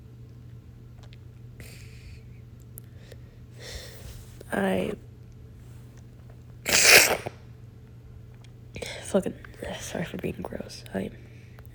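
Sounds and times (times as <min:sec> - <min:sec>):
speech: 0:04.5 - 0:05.1, 0:09.2 - 0:11.3
person with a cold and stuffed nose sneezing: 0:06.7 - 0:07.3.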